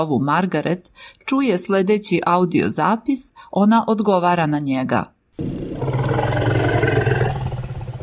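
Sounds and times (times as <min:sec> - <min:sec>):
speech: 0:00.0 - 0:06.3
African savanna elephant rumble: 0:05.4 - 0:08.0.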